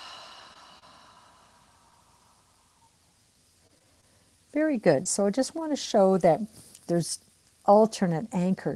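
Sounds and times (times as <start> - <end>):
long breathy exhalation: 0.0 - 2.8
speech: 4.6 - 8.7.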